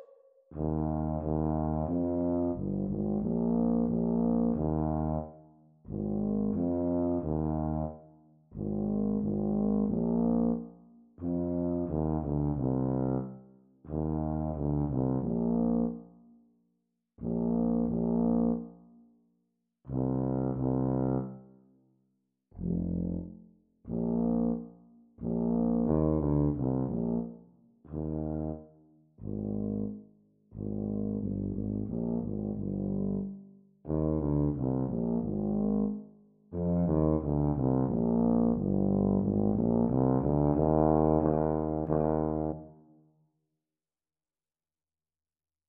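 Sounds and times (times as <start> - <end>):
B-flat tuba duet playing a sea song: 0.5 - 16.2, 17.2 - 18.9, 19.9 - 21.6, 22.6 - 42.9.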